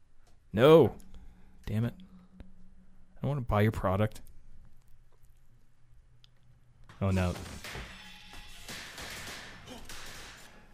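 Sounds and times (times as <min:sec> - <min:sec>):
noise: 0:00.0 - 0:10.7
speech: 0:00.5 - 0:01.0, 0:01.7 - 0:02.0, 0:03.2 - 0:04.3, 0:07.0 - 0:07.8
gunshots: 0:07.1 - 0:10.7.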